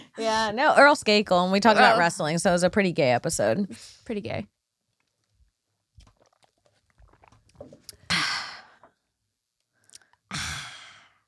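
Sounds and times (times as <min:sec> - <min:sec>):
speech: 0:00.2 - 0:04.6
sipping and swallowing a drink: 0:05.9 - 0:08.1.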